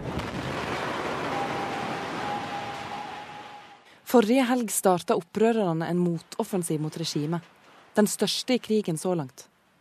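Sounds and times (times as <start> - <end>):
explosion in a Syrian government army building: 0.0 - 3.8
speech: 4.1 - 9.5.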